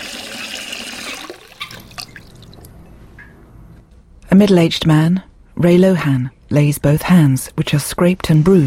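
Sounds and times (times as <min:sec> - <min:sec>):
hot water filling a white bathroom sink from the tap: 0:00.0 - 0:02.7
water dripping: 0:00.4 - 0:03.3
speech: 0:04.4 - 0:08.6.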